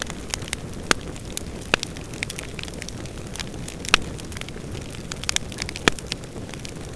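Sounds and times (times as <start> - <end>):
fire in a chimney: 0.0 - 6.9.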